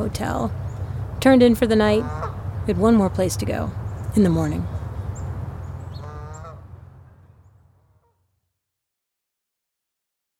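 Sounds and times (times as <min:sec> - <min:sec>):
speech: 0:00.0 - 0:00.6, 0:01.2 - 0:04.8
low rumbling background: 0:00.0 - 0:08.0
birds calling in the woods: 0:00.0 - 0:08.2
harmonic honking or squawking bird call: 0:01.6 - 0:08.3.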